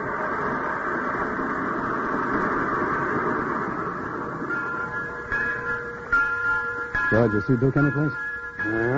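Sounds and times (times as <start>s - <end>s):
locomotive-pulled train rumbling: 0.0s - 8.9s
faint high metallic squeals: 3.9s - 8.9s
speech: 7.1s - 8.9s.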